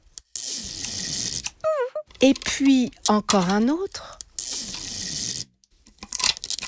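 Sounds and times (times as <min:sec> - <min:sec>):
long piece of adhesive tape pulled off a roll: 0:00.1 - 0:01.6, 0:04.2 - 0:06.6
speech: 0:02.2 - 0:04.2.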